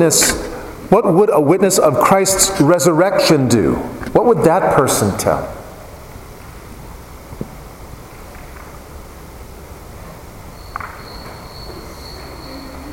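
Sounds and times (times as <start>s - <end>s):
speech: 0.0s - 5.6s
low noisy room background: 0.0s - 12.9s
faint high-pitched cricket trill: 10.4s - 12.9s.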